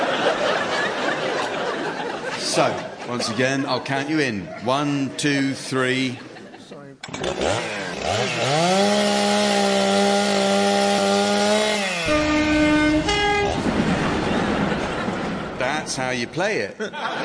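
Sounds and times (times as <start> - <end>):
laughter: 0.0 - 7.0, 13.6 - 17.2
speech: 2.6 - 6.3, 7.1 - 10.4, 16.0 - 17.2
voices imitating a chainsaw revving up and droning: 7.0 - 12.3
imitated train whistle or horn: 12.0 - 13.6.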